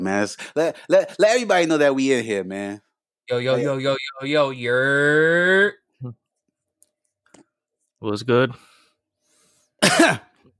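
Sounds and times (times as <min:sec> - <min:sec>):
speech: 0:00.0 - 0:06.2, 0:08.0 - 0:08.7, 0:09.8 - 0:10.3
person coughing harshly: 0:09.8 - 0:10.4.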